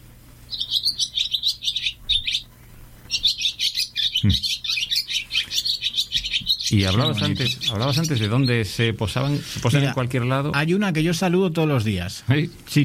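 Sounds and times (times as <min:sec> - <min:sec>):
swallows twittering: 0:00.5 - 0:02.5, 0:03.1 - 0:10.4
speech: 0:04.2 - 0:04.6, 0:06.7 - 0:12.8.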